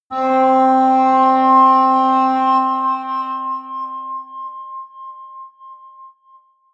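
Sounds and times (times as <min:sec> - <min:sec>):
atmospheric high feedback synthesizer drones: 0:00.1 - 0:04.8.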